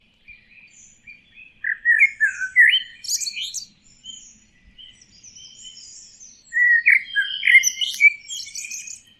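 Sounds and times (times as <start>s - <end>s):
bird twittering chirps: 0.2s - 9.1s.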